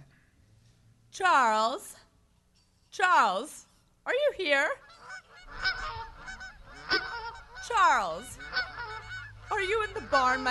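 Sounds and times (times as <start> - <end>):
speech: 1.2 - 2.0, 3.0 - 5.0, 7.7 - 8.7, 9.5 - 10.4
geese honking in a pen: 4.5 - 10.4.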